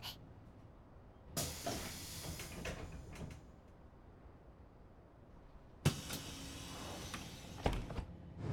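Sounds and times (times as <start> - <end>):
bus air brakes hissing: 1.3 - 3.4, 5.9 - 7.9
pneumatic bus doors hissing open: 1.3 - 3.7, 5.8 - 8.3.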